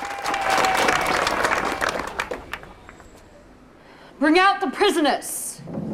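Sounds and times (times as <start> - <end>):
crowd clapping: 0.0 - 3.2
crowd noise: 0.0 - 3.8
speech: 4.2 - 5.8.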